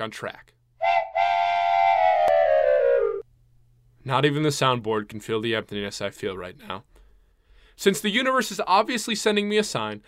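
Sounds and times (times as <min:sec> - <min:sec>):
speech: 0:00.0 - 0:00.5, 0:04.0 - 0:07.0, 0:07.8 - 0:10.0
train whistle blast: 0:00.8 - 0:03.2.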